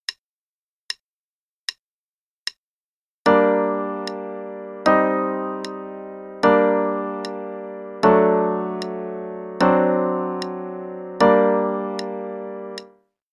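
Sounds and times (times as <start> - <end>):
g minor chord progression: 3.3 - 12.9.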